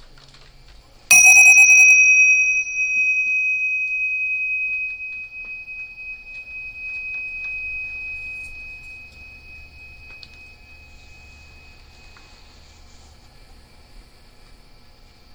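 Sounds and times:
big bell struck and ringing: 1.1 - 12.2.

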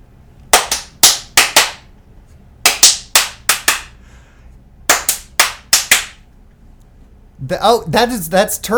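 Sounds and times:
hand claps tapping out a syncopated film theme rhythm: 0.5 - 1.9, 2.6 - 4.0, 4.9 - 6.2
speech: 7.4 - 8.7.

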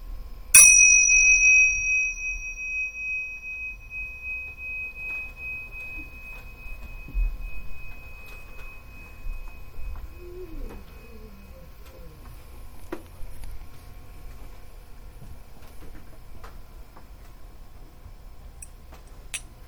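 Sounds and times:
meditation bell ringing with a bright tone: 0.6 - 12.9.

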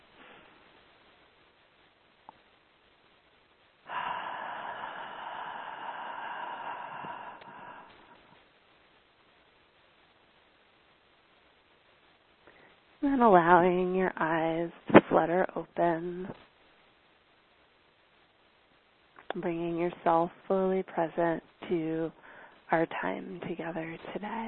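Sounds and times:
quiet hiss: 0.0 - 24.4
long breathy exhale: 3.9 - 8.3
speech: 13.0 - 16.5, 19.4 - 24.4.

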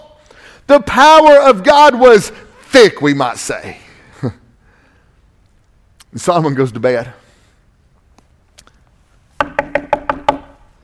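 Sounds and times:
speech: 0.7 - 4.4, 6.1 - 7.2
knocks on a hollow resonant surface: 9.4 - 10.6.

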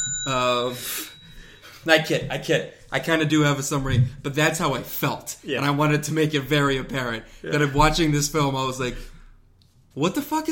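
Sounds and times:
bright metallic bell ringing: 0.0 - 2.2
speech: 0.2 - 1.1, 1.8 - 9.1, 10.0 - 10.4.

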